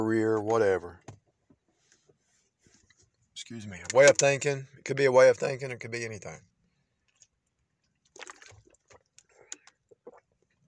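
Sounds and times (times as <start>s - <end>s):
speech: 0.0s - 1.1s, 3.4s - 6.5s
person slurping and gulping water: 7.1s - 10.6s.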